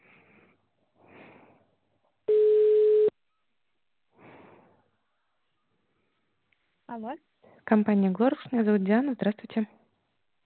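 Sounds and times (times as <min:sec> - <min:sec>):
ringback tone of an outgoing phone call: 0:02.3 - 0:03.1
speech: 0:06.9 - 0:09.8.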